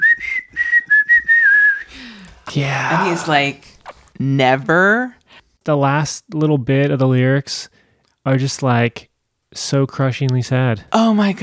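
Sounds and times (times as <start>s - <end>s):
person whistling a short tune: 0.0s - 2.2s
speech: 2.5s - 11.4s.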